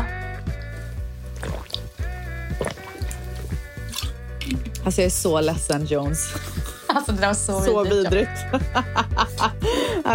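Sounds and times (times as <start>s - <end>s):
person gulping water: 1.4s - 1.9s, 2.5s - 4.6s
speech: 4.8s - 10.1s
laughter: 8.3s - 10.0s.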